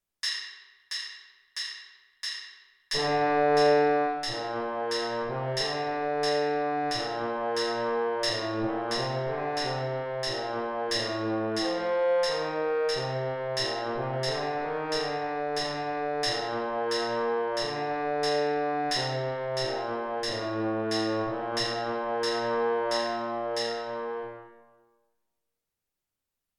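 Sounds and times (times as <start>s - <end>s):
trombone playing baritone part: 3.0s - 24.7s.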